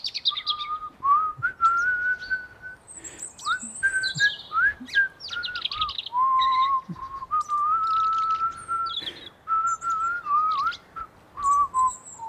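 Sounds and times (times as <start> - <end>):
scattered birds chirping and tweeting in a garden: 0.0 - 12.2
grandmother whistling a gentle wandering little tune in a garden: 0.4 - 2.8, 3.4 - 12.2.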